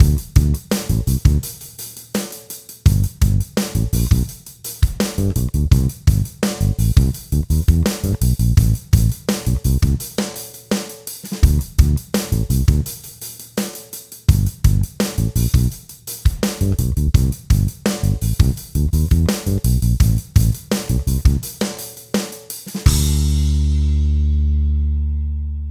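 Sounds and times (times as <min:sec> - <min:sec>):
bass guitar: 0:00.0 - 0:01.5, 0:02.9 - 0:04.3, 0:05.0 - 0:10.0, 0:11.4 - 0:12.8, 0:14.3 - 0:15.7, 0:16.5 - 0:21.4, 0:22.9 - 0:25.6
drum kit: 0:00.0 - 0:25.0.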